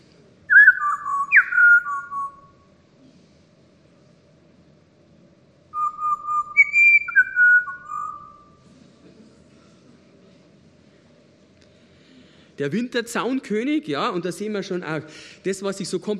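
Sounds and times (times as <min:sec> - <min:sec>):
Pied Butcherbird song of mellow fluting whistles: 0:00.5 - 0:02.5, 0:05.8 - 0:08.5
speech: 0:12.6 - 0:16.1.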